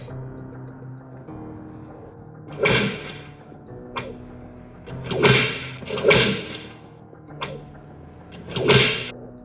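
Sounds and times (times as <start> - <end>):
steady low droning background: 0.0 - 9.4
sharp whip lashes cracking: 2.5 - 3.2, 5.0 - 6.7, 8.4 - 9.1.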